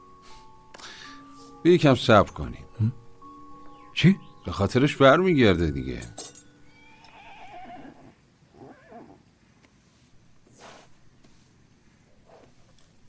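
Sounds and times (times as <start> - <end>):
speech: 1.6 - 3.0, 4.0 - 6.2
horse whinnying: 6.7 - 9.2.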